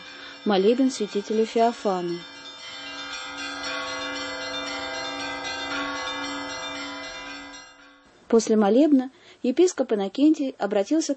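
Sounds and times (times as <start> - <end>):
church bells pealing as an Orthodox bishop proceeds into a cathedral: 0.0 - 8.1
speech: 0.4 - 2.3, 8.3 - 11.1.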